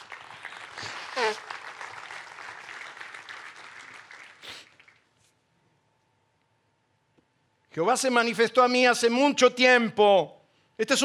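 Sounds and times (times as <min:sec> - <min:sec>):
audience applauding: 0:00.0 - 0:05.1
person whooping: 0:00.8 - 0:01.5
speech: 0:01.2 - 0:01.6, 0:07.8 - 0:11.0.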